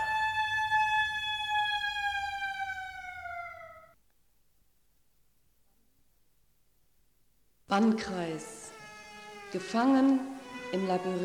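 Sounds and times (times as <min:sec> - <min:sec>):
civil defense siren wailing during a test: 0:00.0 - 0:04.0, 0:08.1 - 0:11.2
speech: 0:07.7 - 0:08.6, 0:09.5 - 0:11.2.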